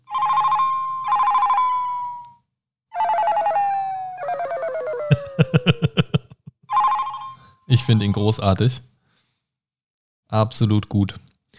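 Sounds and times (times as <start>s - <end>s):
loud electronic phone ringtone with a bright looping melody: 0.0s - 2.3s, 3.0s - 5.7s, 6.7s - 7.6s
laughter: 4.7s - 6.6s
speech: 7.8s - 8.9s, 10.3s - 11.2s.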